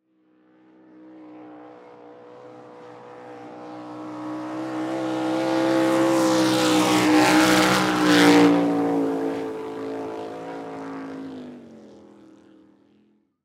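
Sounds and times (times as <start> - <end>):
swamp buggy watercraft passing by fast: 2.9 - 12.0.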